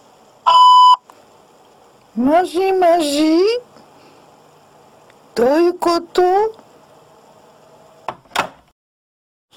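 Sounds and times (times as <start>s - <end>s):
faint hum: 0.0s - 8.7s
answering machine beep: 0.5s - 1.0s
speech: 2.2s - 3.7s, 5.4s - 6.6s.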